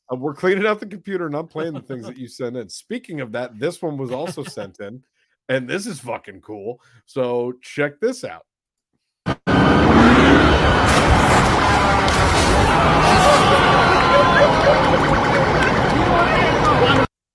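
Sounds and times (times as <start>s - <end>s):
speech: 0.1s - 8.5s
laughter: 1.4s - 2.3s, 3.1s - 4.9s, 12.1s - 17.0s
car speeding in a getaway chase: 9.5s - 17.1s
police sirens wailing: 9.5s - 17.1s
road noise: 9.5s - 17.1s.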